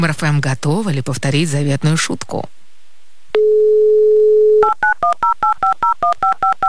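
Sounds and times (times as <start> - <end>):
speech: 0.0 - 2.6
telephone dial tone: 3.4 - 6.6
phone keypad beeps dialing a number: 4.6 - 6.6.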